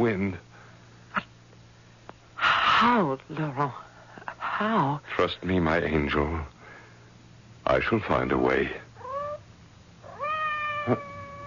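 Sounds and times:
speech: 0:00.0 - 0:00.5, 0:02.9 - 0:03.9, 0:04.6 - 0:06.6, 0:07.7 - 0:08.8, 0:10.9 - 0:11.1
cat meowing outside a door: 0:09.0 - 0:09.4, 0:10.0 - 0:11.4.

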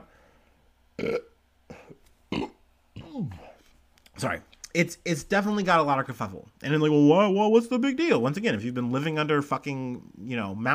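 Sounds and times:
throaty burps: 0:01.0 - 0:03.5
speech: 0:04.2 - 0:10.7.

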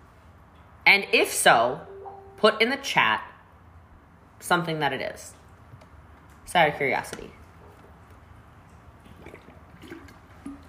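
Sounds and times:
low steady hum: 0:00.0 - 0:10.6
speech: 0:00.9 - 0:03.3, 0:04.4 - 0:05.4, 0:06.5 - 0:07.4
faint liquid sloshing in a shaker bottle: 0:07.6 - 0:10.6
person drinking water from a blender shaker bottle: 0:08.8 - 0:10.6
soft gulps: 0:08.8 - 0:10.6.

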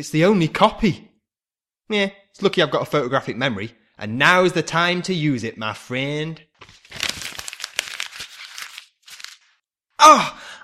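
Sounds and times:
speech: 0:00.0 - 0:01.1, 0:01.9 - 0:06.8, 0:10.0 - 0:10.4
paper script page being crumpled: 0:06.6 - 0:09.6.

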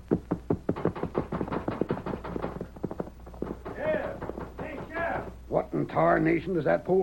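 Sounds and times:
hoofbeats of a horse riding off: 0:00.0 - 0:05.4
speech: 0:06.0 - 0:07.0.

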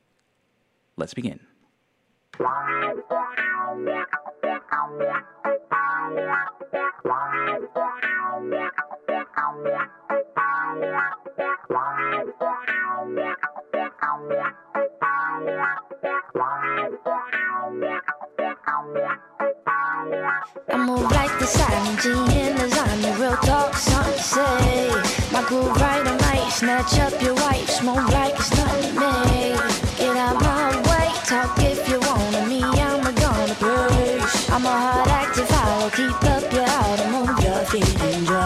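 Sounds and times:
speech: 0:01.0 - 0:01.5, 0:02.4 - 0:04.2, 0:04.8 - 0:08.8, 0:21.0 - 0:29.7
music track with rhythmic pulse and heavily effected distorted textures: 0:02.4 - 0:38.4.

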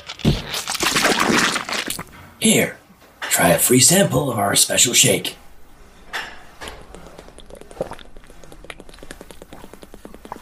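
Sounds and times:
juice pouring into a glass pitcher: 0:00.5 - 0:02.0
speech: 0:02.4 - 0:02.8, 0:03.4 - 0:05.4.

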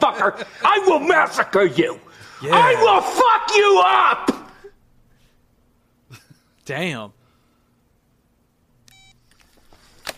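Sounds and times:
speech: 0:00.2 - 0:04.4, 0:06.7 - 0:07.2
electronic beep on a phone line after the call ends: 0:08.9 - 0:09.2.

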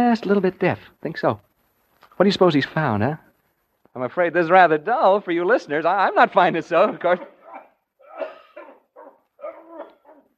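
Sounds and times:
speech: 0:00.0 - 0:01.5, 0:02.2 - 0:03.3, 0:03.9 - 0:07.3
man coughing in the distance: 0:07.1 - 0:10.2.

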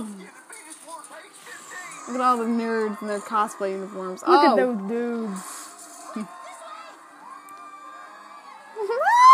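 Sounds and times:
speech: 0:02.1 - 0:05.6, 0:06.2 - 0:06.4
crowd screaming and cheering: 0:05.5 - 0:09.3.

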